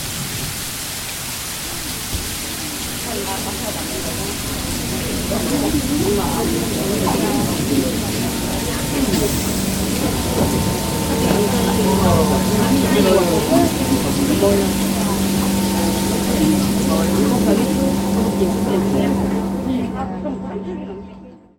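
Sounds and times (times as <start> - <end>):
dark sounds: 1.4 - 21.5.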